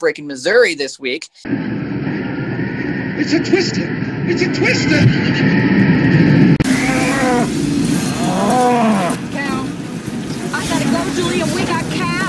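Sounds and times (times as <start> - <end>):
speech: 0.0 - 2.0, 3.2 - 6.4
steady rushing background: 1.4 - 12.2
several cows mooing: 6.6 - 9.6.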